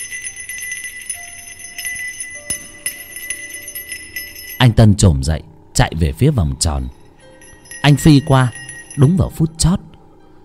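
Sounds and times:
hand bell ringing: 0.0s - 4.8s, 6.8s - 9.7s
speech: 4.6s - 7.0s, 7.8s - 9.8s.

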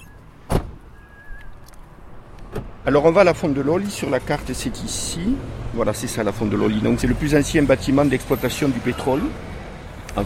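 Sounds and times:
car door shutting as people get out of the car: 0.4s - 1.4s, 2.4s - 2.8s
speech: 2.8s - 9.5s.

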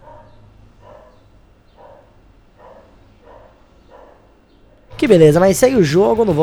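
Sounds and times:
dog barking: 0.0s - 4.8s
low hum: 0.0s - 6.4s
speech: 5.0s - 6.4s.

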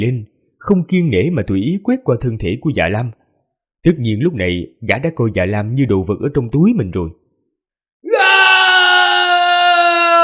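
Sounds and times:
speech: 0.0s - 3.2s, 3.8s - 7.2s
man shouting toward the sky: 8.1s - 10.2s.

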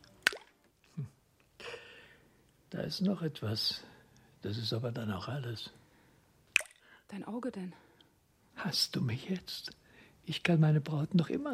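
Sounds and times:
false teeth dropped into a glass of water: 0.2s - 0.6s, 6.6s - 6.8s
speech: 2.8s - 5.8s, 7.1s - 7.8s, 8.6s - 11.5s.

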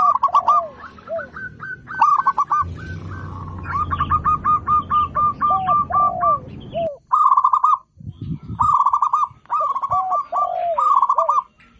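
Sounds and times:
zebra dove singing stuttering coo phrases: 0.0s - 7.8s, 8.6s - 11.6s
low thumping noise: 2.5s - 6.8s.

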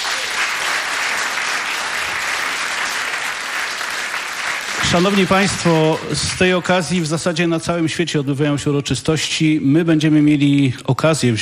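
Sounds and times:
audience applause at a concert: 0.0s - 6.9s
speech: 4.9s - 11.4s.

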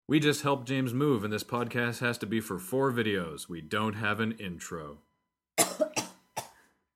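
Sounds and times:
speech: 0.1s - 5.1s
harsh coughs: 5.6s - 6.7s.

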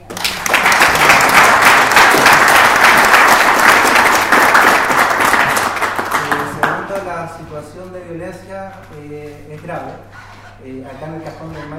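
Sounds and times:
crowd applauding at a community constituent assembly: 0.0s - 7.0s
speech: 8.2s - 11.7s.

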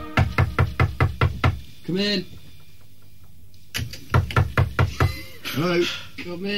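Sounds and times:
knocking on a door: 0.2s - 1.6s, 4.1s - 5.2s
speech: 1.9s - 2.4s, 5.6s - 6.5s.

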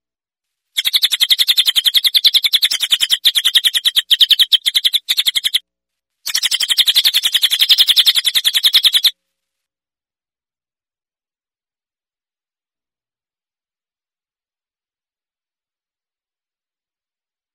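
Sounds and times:
bird song of fast buzzy pulsed trills: 0.8s - 5.6s, 6.3s - 9.1s.

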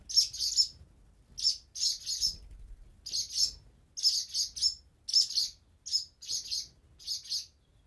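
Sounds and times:
swallow chicks giving high rasping begging calls in a nest: 0.1s - 0.8s, 1.4s - 7.5s.

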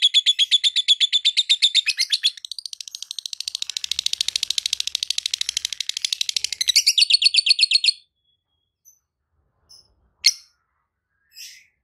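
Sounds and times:
faint lovebird chirps: 0.0s - 11.8s.

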